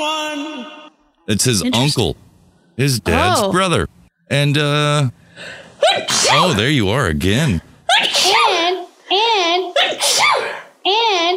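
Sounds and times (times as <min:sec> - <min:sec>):
speech: 0:00.0 - 0:07.7
person sneezing: 0:05.8 - 0:06.6, 0:07.9 - 0:08.6, 0:09.8 - 0:10.8.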